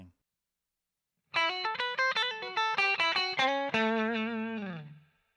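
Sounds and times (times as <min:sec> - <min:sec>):
clean Strat guitar on middle pickup through hotrod: 0:01.3 - 0:05.3.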